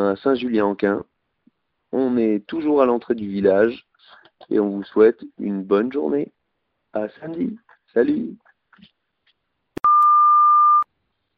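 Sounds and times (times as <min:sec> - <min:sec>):
speech: 0:00.0 - 0:01.1, 0:01.9 - 0:08.9
steady electronic beep: 0:09.8 - 0:10.9.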